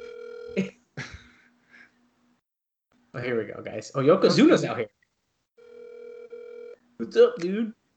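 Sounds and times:
electronic ringback tone from an outgoing phone call: 0:00.0 - 0:00.6, 0:05.6 - 0:06.8
speech: 0:03.2 - 0:05.0, 0:07.0 - 0:07.8.

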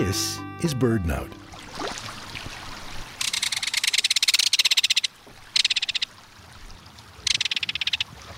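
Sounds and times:
speech: 0:00.1 - 0:01.4
Belted Kingfisher giving a dry metallic rattle along a stream: 0:03.2 - 0:06.1, 0:07.2 - 0:08.1.

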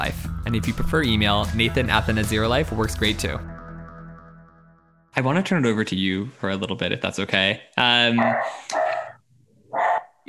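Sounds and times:
speech: 0:00.0 - 0:03.5, 0:05.2 - 0:08.8
small King Charles Cavalier spaniel barking: 0:08.2 - 0:10.2.

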